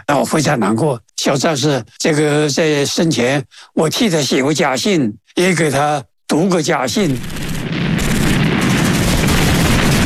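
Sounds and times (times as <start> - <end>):
speech: 0.1 - 7.6
crackling gunfire: 7.0 - 10.0
dense rumbling booms of explosions: 7.2 - 10.0.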